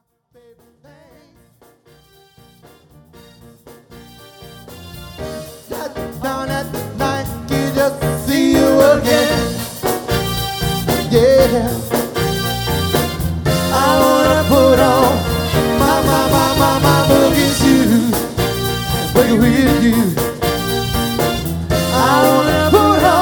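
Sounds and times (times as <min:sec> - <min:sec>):
cover band playing dance music: 0:02.3 - 0:23.2.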